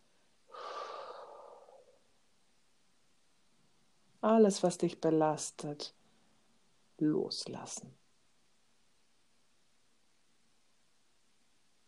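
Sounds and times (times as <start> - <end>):
deep breathy inhale and exhale during a relaxation breathing exercise: 0.5 - 2.1
speech: 4.2 - 6.0, 7.0 - 8.0.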